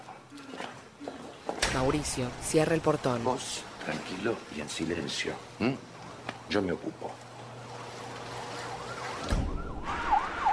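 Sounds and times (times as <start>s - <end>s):
speech: 1.8s - 5.9s, 6.5s - 7.3s
police car siren wailing: 8.4s - 10.5s.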